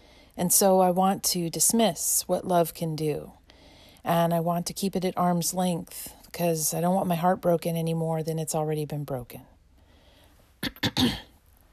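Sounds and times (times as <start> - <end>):
speech: 0.4 - 3.4, 4.0 - 9.5, 10.6 - 11.3
harsh throaty coughs: 10.6 - 11.4.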